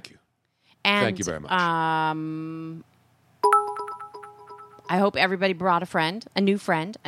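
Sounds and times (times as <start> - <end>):
speech: 0.9 - 2.9, 4.9 - 7.0
bits cheer electronic notification chime: 3.4 - 5.0.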